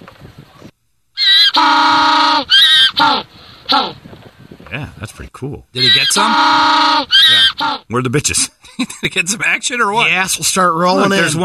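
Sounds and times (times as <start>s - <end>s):
Adelie penguin mating call: 1.2s - 4.0s, 5.8s - 7.9s
speech: 4.8s - 11.4s.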